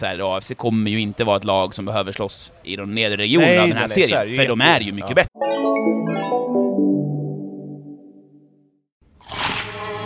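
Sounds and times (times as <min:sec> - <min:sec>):
speech: 0:00.0 - 0:06.5
bite into a crispy fried chicken burger: 0:09.2 - 0:09.7.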